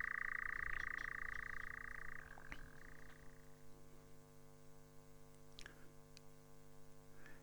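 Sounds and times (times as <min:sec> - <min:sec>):
European nightjar churring on a summer night: 0:00.0 - 0:03.4
low electrical hum: 0:00.0 - 0:07.4.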